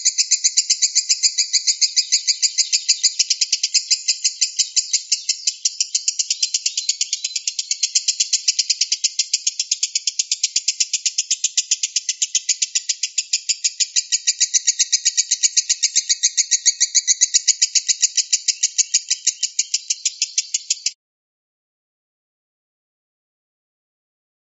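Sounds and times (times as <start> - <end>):
lovebird Konslet call type chatter: 0.0 - 21.0.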